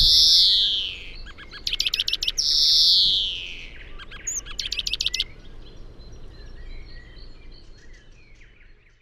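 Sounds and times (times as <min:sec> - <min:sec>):
European greenfinch Chloris chloris nasal wheeze and rattling trills: 0:00.0 - 0:05.3.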